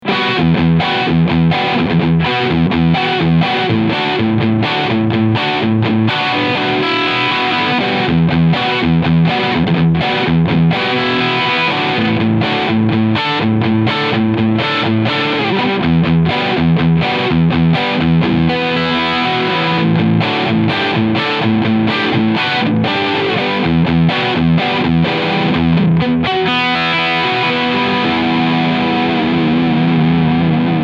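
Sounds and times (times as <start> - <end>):
full gain guitar riff through an amplifier: 0.0 - 30.8.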